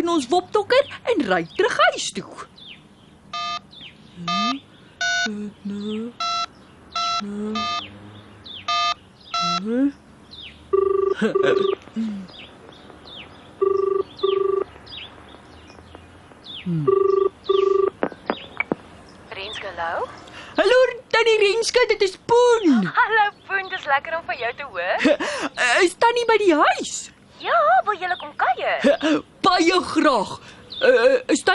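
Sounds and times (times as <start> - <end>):
speech: 0.1 - 2.6, 5.2 - 6.3, 7.2 - 7.9, 9.6 - 10.0, 11.2 - 12.4, 16.7 - 17.2, 20.6 - 31.5
telephone keypad dialing beeps: 3.3 - 3.6, 4.3 - 5.3, 6.2 - 7.8, 8.7 - 9.6, 10.8 - 11.8, 13.6 - 14.7, 16.9 - 18.0
telephone ringing tones on a call to a home phone: 3.3 - 3.6, 5.0 - 5.3, 6.2 - 7.8, 8.7 - 9.6, 10.7 - 11.8, 13.6 - 14.7, 16.8 - 18.0.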